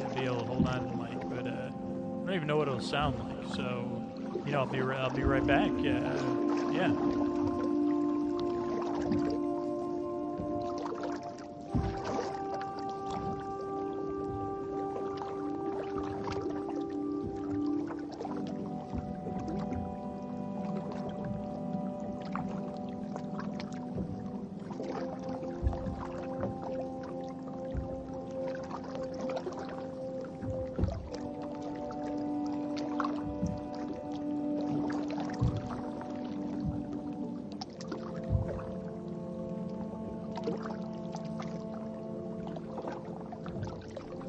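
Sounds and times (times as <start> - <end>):
canoe paddle strokes splashing water: 0.0 - 44.2
steady tonal hum: 0.0 - 44.2
speech: 2.3 - 7.4.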